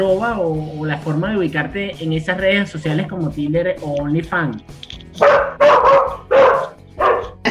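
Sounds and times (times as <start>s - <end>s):
speech: 0.0s - 5.5s
dog barking loudly: 5.2s - 7.4s.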